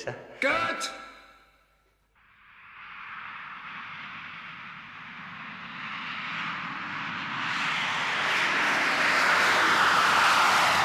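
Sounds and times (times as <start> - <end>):
speech: 0.0 - 1.0
airplane engine roaring on takeoff: 2.6 - 10.8.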